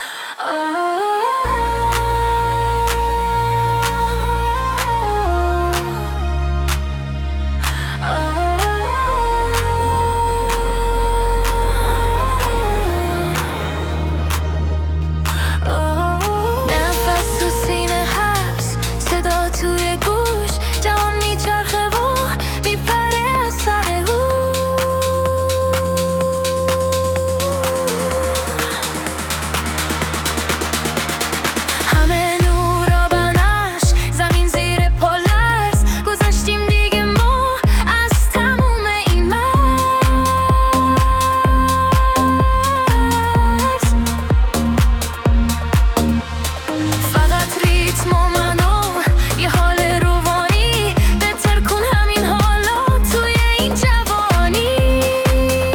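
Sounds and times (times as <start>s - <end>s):
rising synth leads: 1.4s - 55.7s
pumping house beat: 9.5s - 55.7s.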